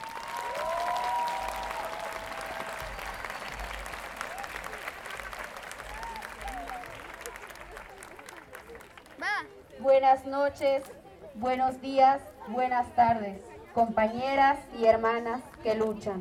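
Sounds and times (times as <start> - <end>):
large audience applauding: 0.0 - 9.4
speech: 9.8 - 16.1.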